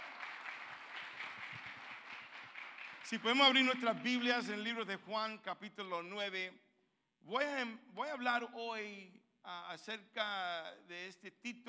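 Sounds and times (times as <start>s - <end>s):
congregation applauding in church: 0.0s - 4.6s
speech: 3.1s - 6.6s, 7.2s - 11.6s.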